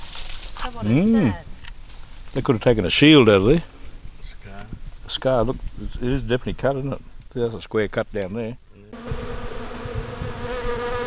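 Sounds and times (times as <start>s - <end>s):
speech: 0.6s - 1.5s, 2.3s - 3.7s, 5.1s - 9.2s
honeybees buzzing around an open hive: 8.9s - 11.0s.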